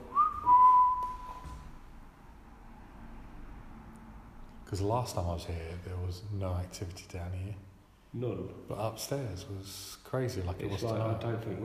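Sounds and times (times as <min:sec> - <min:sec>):
single sustained whistle: 0:00.0 - 0:01.8
speech: 0:04.7 - 0:11.6.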